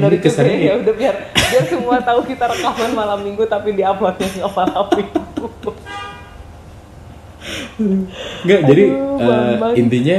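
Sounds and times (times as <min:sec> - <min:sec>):
speech: 0:00.0 - 0:06.2, 0:07.4 - 0:10.1
laughter: 0:01.3 - 0:03.5, 0:04.2 - 0:05.9
car horn honking: 0:05.8 - 0:06.5
breathy noises: 0:07.4 - 0:09.2.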